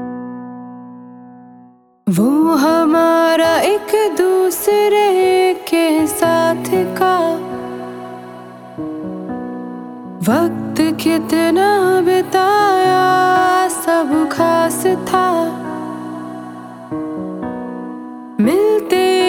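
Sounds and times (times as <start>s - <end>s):
woman's voice sample: 2.1s - 8.8s, 10.2s - 16.9s, 18.4s - 19.2s.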